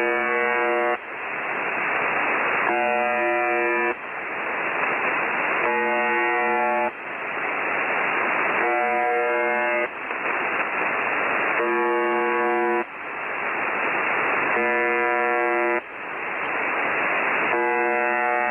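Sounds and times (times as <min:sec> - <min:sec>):
harsh droning buzzer tone over a radio channel: 0:00.0 - 0:01.0, 0:02.6 - 0:04.0, 0:05.6 - 0:07.0, 0:08.6 - 0:09.9, 0:11.5 - 0:12.9, 0:14.5 - 0:15.9, 0:17.5 - 0:18.4
radio static hiss: 0:00.0 - 0:18.4.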